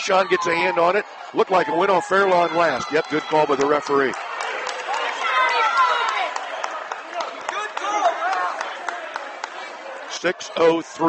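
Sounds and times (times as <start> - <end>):
speech: 0.0 - 4.2, 10.2 - 11.0
gymnasium crowd cheering at a basketball game: 0.0 - 11.0
sharp scattered claps: 2.3 - 9.8.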